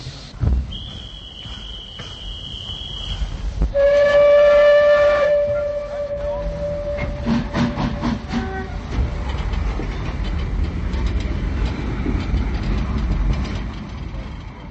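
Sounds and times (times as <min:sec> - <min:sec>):
passenger train pulling away from a station: 0:00.0 - 0:14.6
train wheels clattering on rails: 0:00.3 - 0:14.6
station attendant's hand whistle blowing: 0:00.7 - 0:07.4
metallic squeals: 0:03.8 - 0:08.8.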